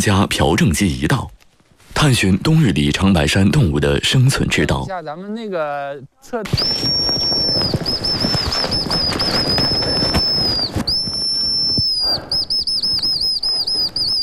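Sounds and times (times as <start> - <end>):
speech: 0.0 - 1.4, 2.0 - 9.7
rustling: 1.3 - 2.6, 6.3 - 14.2
bird call blown on a handheld reed whistle imitating a hazel grouse: 6.5 - 14.2.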